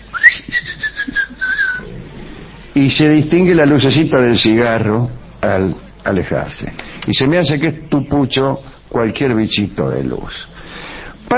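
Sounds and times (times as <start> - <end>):
shrill whistle said to announce a mythical folklore creature at night: 0.1 - 1.8
speech: 2.8 - 10.6.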